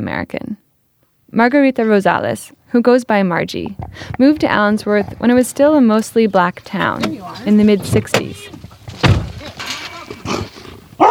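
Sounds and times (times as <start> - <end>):
speech: 0.0 - 0.6, 1.3 - 9.2
wild female dog barking and growling at the gate of a rural house: 9.8 - 11.0.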